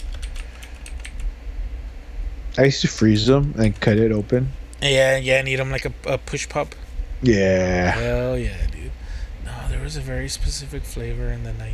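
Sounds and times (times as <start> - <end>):
typing on a computer keyboard: 0.0 - 1.3
steady low rumble: 0.0 - 11.7
speech: 2.6 - 8.7, 9.9 - 11.7.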